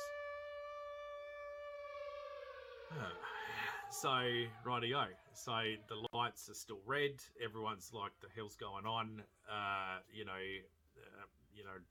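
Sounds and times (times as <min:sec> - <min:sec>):
ominous air-raid siren droning: 0:00.0 - 0:06.1
speech: 0:02.9 - 0:11.8.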